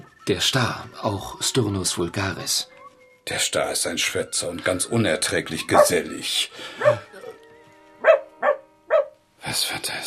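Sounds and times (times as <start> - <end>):
speech: 0.3 - 7.0, 9.5 - 10.0
Jack Russell terrier barking in short sharp yaps: 8.0 - 9.2.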